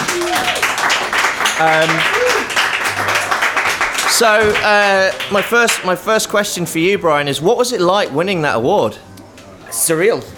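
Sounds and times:
audience applauding: 0.0 - 6.1
speech: 1.6 - 2.2, 4.2 - 9.1, 9.8 - 10.3.

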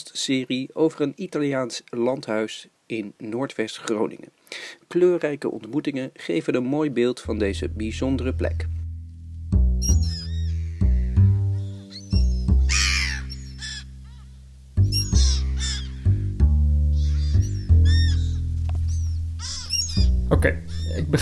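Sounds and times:
speech: 0.0 - 8.8, 20.3 - 21.2
gulls calling while flying overhead: 9.8 - 21.2.

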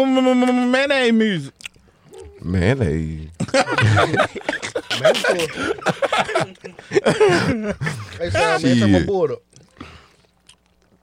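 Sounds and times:
speech: 0.0 - 1.6, 2.4 - 10.0
low hum: 0.0 - 11.0
people chewing: 1.5 - 2.5, 9.5 - 11.0
people drinking: 1.5 - 11.0
laughter: 3.3 - 9.1.

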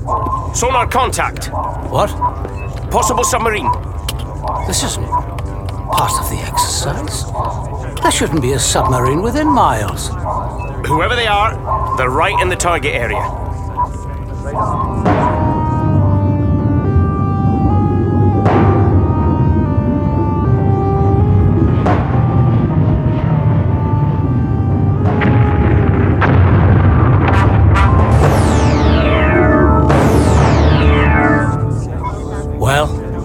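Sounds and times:
constant low churning rumble: 0.0 - 33.2
whining sweeping tones: 0.0 - 33.2
speech: 0.6 - 3.9, 4.6 - 5.3, 5.9 - 13.4
heavy depth charge explosions: 14.6 - 32.1.

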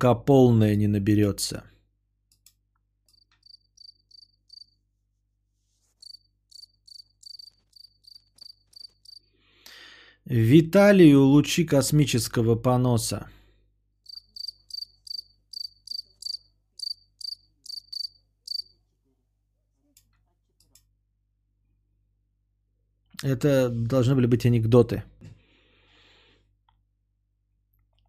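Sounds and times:
speech: 0.0 - 1.7, 10.3 - 13.4, 23.2 - 25.3
cricket chirping from a played recording: 3.1 - 4.8, 6.0 - 9.3, 14.0 - 18.8.

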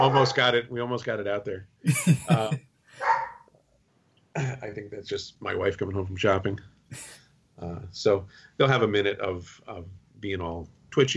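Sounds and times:
dogs barking excitedly at home: 0.0 - 0.4, 3.0 - 3.5
speech: 0.0 - 3.1, 4.4 - 11.1
laughter: 1.9 - 2.6.

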